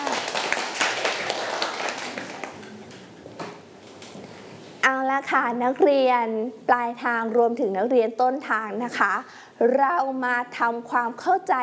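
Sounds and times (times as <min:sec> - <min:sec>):
group of children clapping for a classmate in a room: 0:00.0 - 0:02.7
speech: 0:05.2 - 0:11.6.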